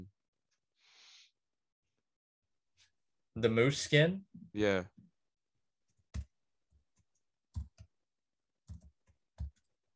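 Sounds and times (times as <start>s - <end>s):
speech: 3.4s - 5.0s
computer keyboard typing: 5.9s - 8.0s, 8.6s - 9.9s.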